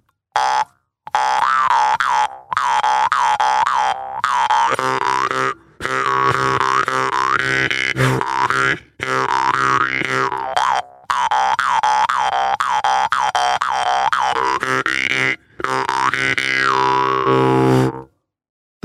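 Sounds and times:
jaw harp twanging: 0.4s - 18.1s.

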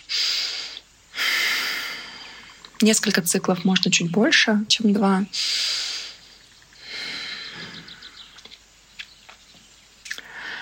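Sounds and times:
nasal inhalations during a breathing exercise: 0.0s - 2.8s, 5.3s - 8.6s, 10.0s - 10.6s
speech: 2.8s - 5.6s.

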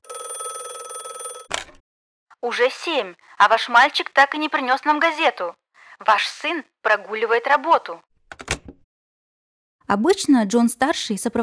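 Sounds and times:
telephone bell ringing: 0.0s - 1.5s
speech: 2.4s - 8.1s, 9.9s - 11.4s.

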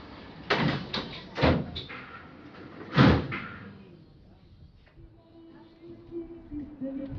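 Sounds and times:
metro train sliding doors slamming shut: 0.4s - 3.7s.

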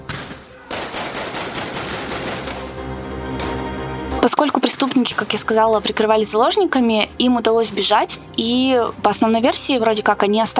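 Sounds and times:
rapid volley of gunshots in a shootout: 0.0s - 3.6s
speech: 4.2s - 10.5s.

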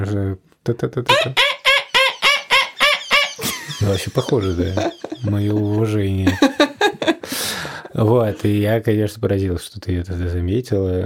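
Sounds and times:
speech: 0.0s - 1.5s, 3.8s - 6.6s, 7.9s - 11.0s
person mimicking a Eurasian wryneck's call: 1.1s - 3.3s
laughter: 1.1s - 8.6s.

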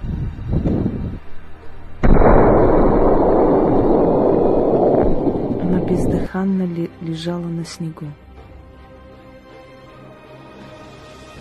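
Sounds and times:
gunshot fired by a man in snowy mountains: 2.0s - 6.3s
quieter rumbling lead-in: 2.0s - 6.4s
speech: 6.4s - 8.2s.

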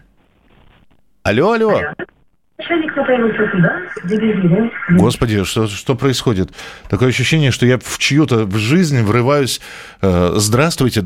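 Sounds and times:
speech: 1.3s - 2.0s, 2.6s - 11.0s
caller's radio playing back through a telephone line: 1.5s - 5.6s.

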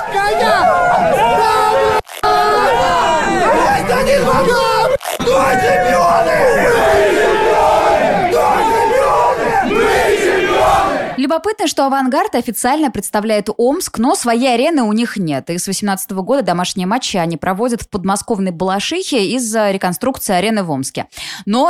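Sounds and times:
dense crowd chatter in a locker room: 0.0s - 11.2s
speech: 11.3s - 21.6s.

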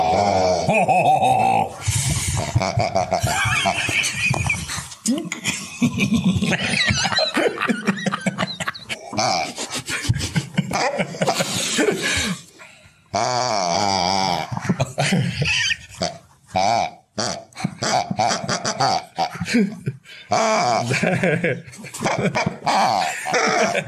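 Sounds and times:
pig grunting and squealing: 0.0s - 3.8s, 8.9s - 9.9s, 13.1s - 19.5s, 22.0s - 23.8s
laughter: 0.0s - 12.5s, 14.5s - 16.0s, 18.0s - 23.8s
speech: 0.1s - 1.3s, 21.2s - 23.8s.

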